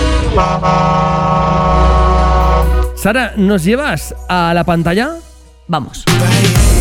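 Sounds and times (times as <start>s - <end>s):
car horn blaring: 0.1s - 3.0s
speech: 0.4s - 1.0s, 3.0s - 6.6s.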